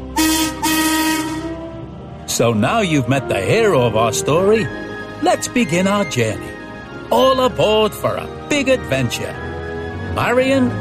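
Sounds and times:
railway steam shovel whistle toots: 0.1 - 1.6
speech: 2.4 - 9.5, 10.2 - 10.7.

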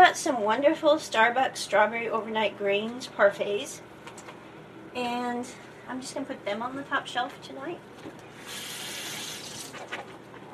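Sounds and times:
speech: 0.1 - 3.9, 5.0 - 8.7
faucet running with warm water: 8.4 - 9.8.

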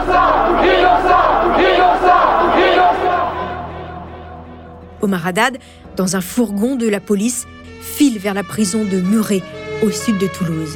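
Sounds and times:
large crowd chanting a slogan in unison outside courthouse: 0.0 - 4.7
speech: 5.0 - 10.7.

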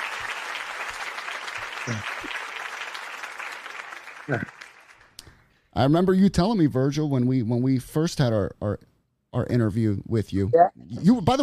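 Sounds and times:
steady applause from a group of people: 0.0 - 5.2
speech: 1.8 - 2.4, 4.3 - 4.6, 5.8 - 11.4.

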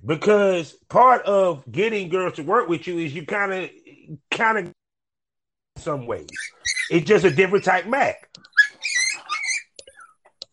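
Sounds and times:
speech: 0.0 - 4.8, 5.8 - 8.5
small female Yorkie dog whining while stuck: 6.3 - 10.4.

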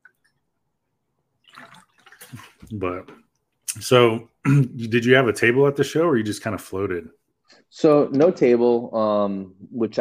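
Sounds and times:
water sloshing in a water bottle being tipped or drunk from: 1.3 - 2.9
speech: 2.3 - 9.9.

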